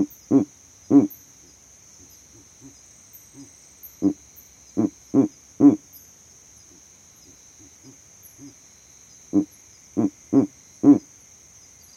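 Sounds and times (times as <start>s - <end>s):
male Verreaux's eagle owl grunting hoots from a tree in savanna: 0.0s - 1.2s, 3.4s - 4.2s, 4.8s - 5.8s, 9.3s - 11.1s
continuous high-pitched insect whine in savanna: 0.0s - 11.9s.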